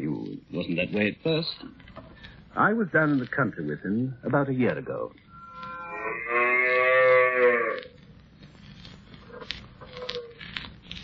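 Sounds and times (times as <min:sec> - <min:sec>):
speech: 0:00.6 - 0:01.8, 0:02.6 - 0:05.2
cow mooing: 0:05.3 - 0:07.9.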